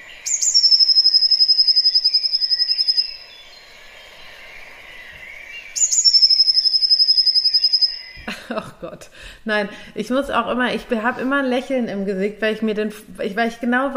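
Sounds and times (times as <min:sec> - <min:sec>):
bird singing long rapid high-pitched trills: 0:00.0 - 0:08.3
laughter: 0:08.3 - 0:09.0
speech: 0:08.5 - 0:13.9.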